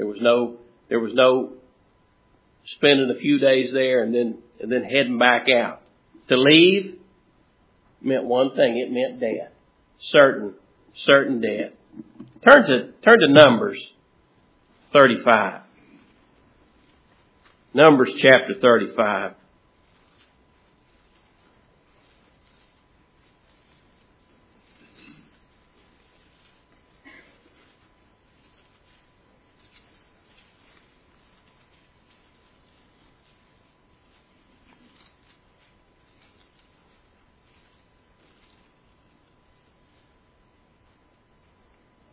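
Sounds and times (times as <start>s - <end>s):
speech: 0.0s - 1.6s, 2.6s - 7.0s, 8.0s - 14.0s, 14.9s - 15.6s, 17.7s - 19.4s
Bible pages turning: 19.8s - 40.1s.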